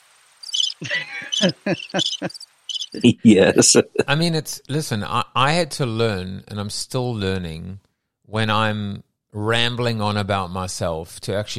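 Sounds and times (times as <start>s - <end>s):
crickets chirping: 0.0s - 3.0s
laughter: 0.8s - 2.4s, 3.0s - 4.6s
speech: 0.8s - 11.5s.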